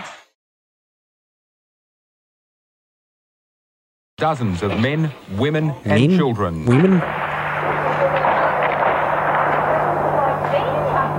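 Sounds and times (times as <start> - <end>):
speech: 4.2 - 7.8
gunshots from a live shooting incident: 6.7 - 11.1.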